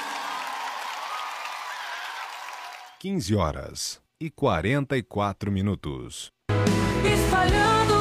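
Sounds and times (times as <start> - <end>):
church congregation applauding: 0.0 - 3.0
speech: 3.0 - 7.9.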